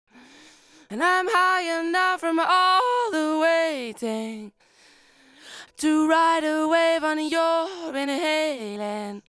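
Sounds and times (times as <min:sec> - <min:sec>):
lead vocal chorus: 0:00.8 - 0:04.6, 0:05.5 - 0:09.3.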